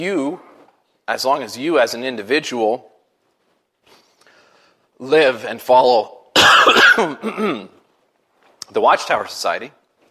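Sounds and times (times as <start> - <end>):
speech: 0.0 - 0.5, 1.1 - 2.9, 5.0 - 7.8, 8.7 - 9.8
person coughing with rough hacking: 6.4 - 7.8.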